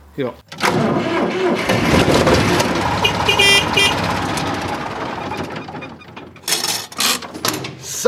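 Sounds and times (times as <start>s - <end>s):
speech: 0.2s - 2.5s
Deutz D4506 tractor diesel engine running: 0.6s - 6.7s.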